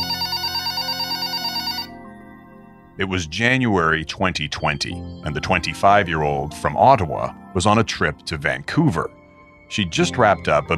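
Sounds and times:
telephone ringing with electronic trill: 0.0 - 2.1
speech: 3.0 - 10.7.

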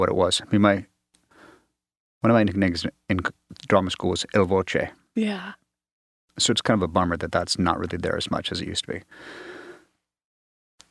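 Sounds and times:
speech: 0.0 - 0.9, 2.2 - 5.6, 6.4 - 9.6
short sharp intake of breath: 9.1 - 9.9
person gasping for breath: 9.1 - 10.0.

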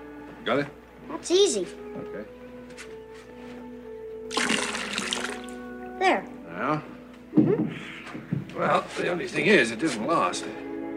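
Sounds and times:
speech: 0.4 - 2.9, 6.0 - 10.7
water pouring out of a container: 4.3 - 5.6.

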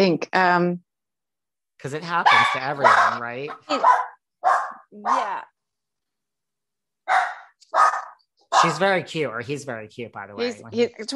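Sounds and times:
speech: 0.0 - 0.9, 1.8 - 4.1, 4.9 - 5.5, 8.5 - 11.1
dog barking: 2.2 - 5.4, 7.0 - 8.9.

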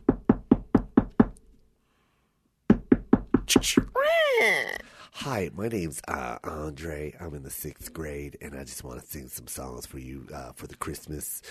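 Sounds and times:
firm knocking on a door: 0.0 - 1.4, 2.7 - 3.9
speech: 3.6 - 11.4.

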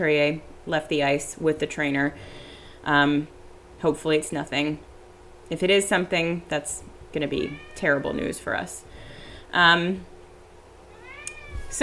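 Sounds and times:
speech: 0.0 - 4.9, 5.5 - 8.9, 9.5 - 10.1
cat meowing: 7.3 - 8.2, 10.9 - 11.8.

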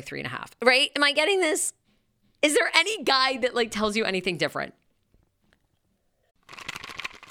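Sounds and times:
speech: 0.0 - 1.8, 2.4 - 4.8
strawberry-flavored fertility-aid gummy being crunched and chewed: 6.4 - 7.2.

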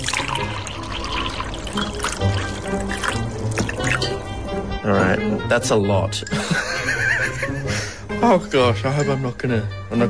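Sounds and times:
whiskey being poured into a glass: 0.0 - 4.2
speech: 4.8 - 7.1, 8.2 - 10.0
laughter: 6.3 - 8.0.

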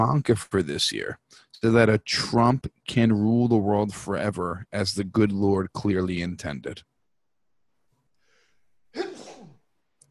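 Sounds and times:
speech: 0.0 - 6.9, 9.0 - 9.2
loud sneeze: 8.9 - 9.6.

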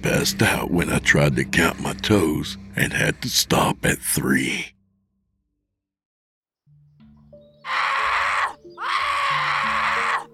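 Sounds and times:
speech: 0.0 - 4.8
person screaming in pain: 7.7 - 10.3.

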